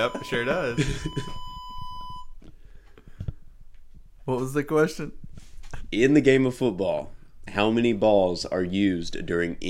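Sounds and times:
speech: 0:00.0 - 0:01.5, 0:04.3 - 0:09.6
phone beeping: 0:00.0 - 0:02.4.

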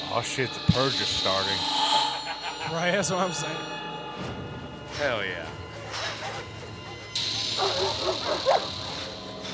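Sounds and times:
speech: 0:00.1 - 0:01.8, 0:02.7 - 0:04.5, 0:05.0 - 0:05.6, 0:07.6 - 0:08.7
dogs barking: 0:05.8 - 0:09.5.

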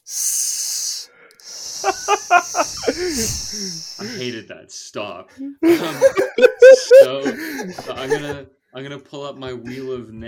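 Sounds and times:
snake hiss sound effect: 0:00.0 - 0:04.3
laughter: 0:01.8 - 0:03.3, 0:05.6 - 0:08.4
speech: 0:01.8 - 0:10.2.

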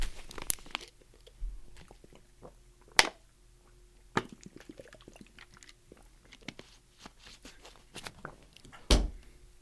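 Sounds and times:
person sipping water: 0:00.8 - 0:02.6, 0:03.6 - 0:08.7.

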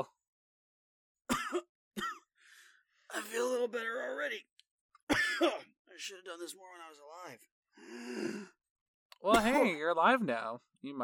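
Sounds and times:
person coughing harshly: 0:01.3 - 0:02.3, 0:05.1 - 0:05.8
speech: 0:03.2 - 0:04.6, 0:05.4 - 0:08.6, 0:09.2 - 0:11.0
soft breathy exhale: 0:07.8 - 0:08.6.

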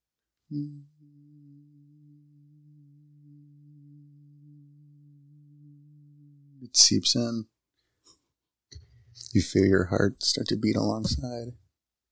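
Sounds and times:
speech: 0:00.5 - 0:00.9, 0:06.6 - 0:07.5, 0:09.3 - 0:11.6
soft low humming tone: 0:00.5 - 0:06.7.

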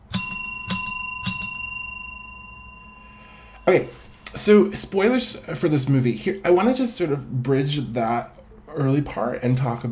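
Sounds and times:
small bell ringing: 0:00.0 - 0:03.8
speech: 0:03.7 - 0:09.9.

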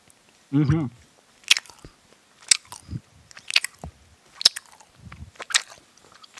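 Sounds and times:
speech: 0:00.5 - 0:01.0
sharp mouth smacking clicks: 0:01.4 - 0:06.3
wet chewing of sticky candy: 0:01.4 - 0:06.3.

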